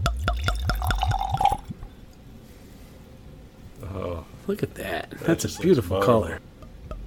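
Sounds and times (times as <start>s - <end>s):
whiskey glugging out of a bottle into a glass: 0.1s - 1.8s
speech: 4.5s - 6.5s.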